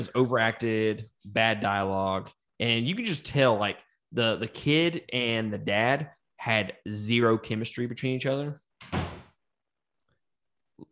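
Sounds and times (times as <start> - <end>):
speech: 0.0 - 9.0
door opening and shutting: 8.8 - 9.4.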